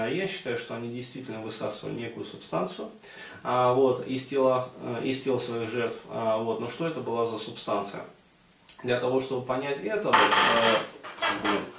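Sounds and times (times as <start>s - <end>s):
speech: 0.0s - 8.2s, 8.8s - 11.7s
wooden furniture creaking: 10.1s - 11.7s.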